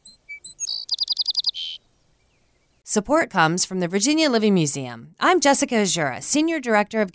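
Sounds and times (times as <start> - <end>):
song sparrow singing: 0.0 - 2.8
speech: 2.9 - 7.1.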